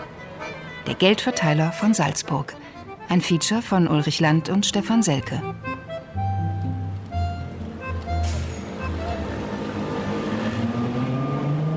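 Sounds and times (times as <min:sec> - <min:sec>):
passing traffic on a busy city street: 0:00.0 - 0:11.7
speech: 0:00.9 - 0:05.8
heavy vehicle and bus engines rumbling on a busy city street: 0:05.5 - 0:11.7.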